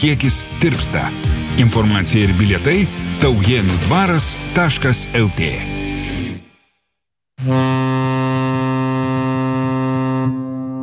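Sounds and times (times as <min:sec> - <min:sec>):
speech: 0:00.0 - 0:05.8
large passenger steamboat horn blast on the Nemunas river: 0:07.4 - 0:10.8.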